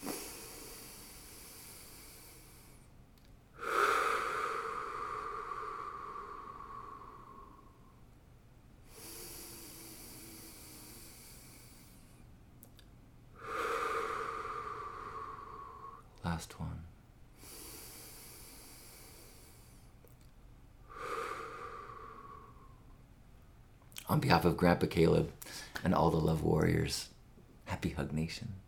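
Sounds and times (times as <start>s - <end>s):
deep breathing with inhales through the nose: 0.0s - 8.1s, 8.8s - 16.4s, 17.3s - 23.0s, 25.3s - 25.8s
speech: 16.4s - 16.9s, 24.1s - 27.1s, 27.8s - 28.6s.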